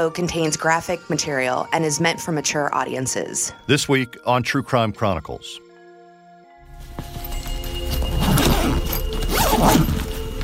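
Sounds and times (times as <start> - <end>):
speech: 0.0 - 5.6
rustling of bags being packed: 6.6 - 10.4
zipper pulls: 7.9 - 10.4.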